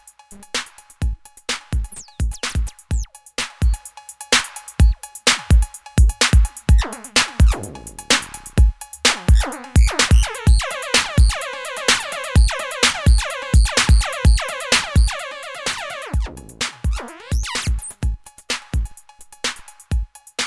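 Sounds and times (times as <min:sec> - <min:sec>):
notch envelope follower filtered sound: 0:00.3 - 0:03.8, 0:04.8 - 0:19.9.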